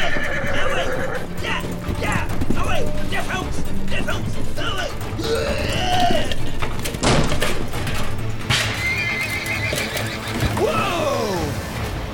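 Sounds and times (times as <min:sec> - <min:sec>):
horses in a barn whinnying and neighing: 0:00.0 - 0:11.6
horse hooves clattering: 0:00.0 - 0:12.0
sharp wooden knocks: 0:06.6 - 0:08.9.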